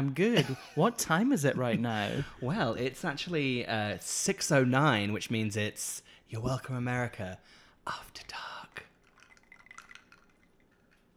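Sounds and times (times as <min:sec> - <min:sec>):
speech: 0:00.0 - 0:08.9
gin and tonic trickling into a glass with fizzy bubbles: 0:08.9 - 0:10.9
sharp glassy clink: 0:09.2 - 0:11.1.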